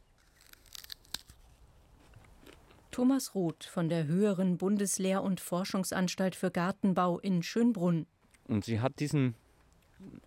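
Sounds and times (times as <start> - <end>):
biting into a fruit with firm apple-like flesh: 0.0 - 2.9
speech: 3.0 - 9.4, 10.0 - 10.2.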